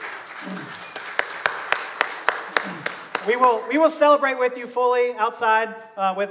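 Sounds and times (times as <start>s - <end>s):
sharp evenly spaced claps: 0.0s - 4.4s
church audience applauding: 0.0s - 4.5s
speech: 0.4s - 0.9s, 3.2s - 6.3s.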